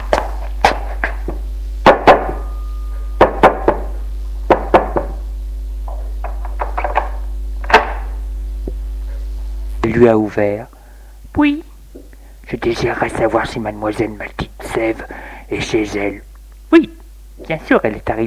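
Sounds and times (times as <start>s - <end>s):
low steady hum: 0.0s - 18.2s
knocking on a door: 3.2s - 5.2s
speech: 10.0s - 10.7s, 11.4s - 11.7s, 12.5s - 18.2s.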